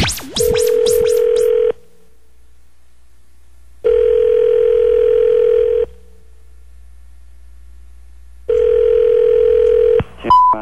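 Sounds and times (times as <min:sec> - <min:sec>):
steady phone tone in long pulses on the line: 0:00.2 - 0:01.8, 0:03.8 - 0:06.0, 0:08.5 - 0:10.5.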